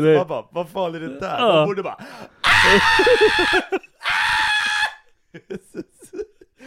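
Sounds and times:
speech: 0:00.0 - 0:04.4, 0:05.3 - 0:06.6
person imitating a horror-film scream: 0:02.4 - 0:05.0
laughter: 0:02.5 - 0:06.6.

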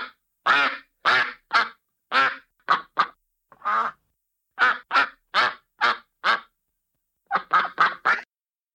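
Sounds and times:
various ducks quacking loudly: 0:00.0 - 0:04.0, 0:04.6 - 0:06.5, 0:07.3 - 0:08.3.

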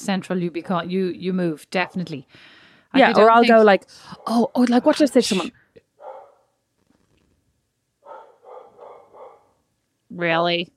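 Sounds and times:
speech: 0:00.0 - 0:05.6, 0:10.1 - 0:10.7
faint dog barking: 0:06.0 - 0:06.6, 0:08.0 - 0:09.6.

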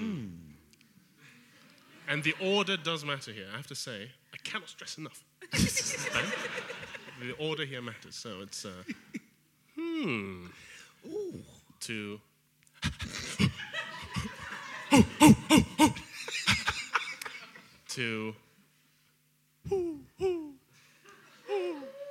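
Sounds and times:
speech: 0:02.1 - 0:09.1, 0:10.0 - 0:12.3, 0:18.0 - 0:18.4
laughter: 0:05.5 - 0:07.2, 0:13.3 - 0:17.8
person imitating an owl hoot during a sound-guessing game: 0:09.8 - 0:10.4, 0:11.0 - 0:11.6, 0:14.9 - 0:16.1, 0:19.6 - 0:20.6, 0:21.4 - 0:22.0.

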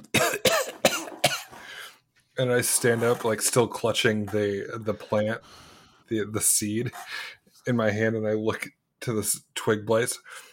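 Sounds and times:
person sputtering and coughing out seawater: 0:00.0 - 0:01.7
speech: 0:02.4 - 0:10.5.

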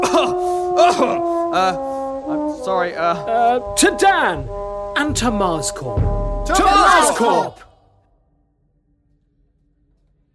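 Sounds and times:
rough phlegmy cough bursts: 0:00.0 - 0:01.3
speech: 0:00.8 - 0:07.7.

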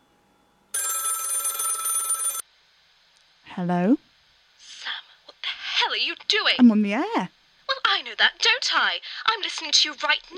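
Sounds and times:
telephone ringing in a studio: 0:00.7 - 0:02.4
speech: 0:03.6 - 0:04.0, 0:06.0 - 0:07.4, 0:08.0 - 0:10.3.

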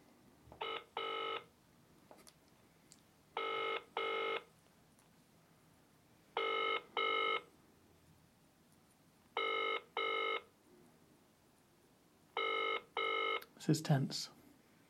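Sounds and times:
outgoing phone call double-burst ringing tone: 0:00.6 - 0:01.5, 0:03.4 - 0:04.5, 0:06.4 - 0:07.5, 0:09.4 - 0:10.5, 0:12.4 - 0:13.4
speech: 0:13.6 - 0:14.4.

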